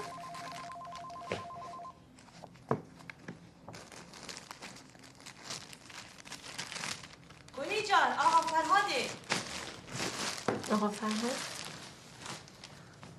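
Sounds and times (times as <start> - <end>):
telephone ringing in a home: 0.0 - 2.0
soft rustling and crinkling: 0.0 - 13.1
speech: 10.7 - 11.5.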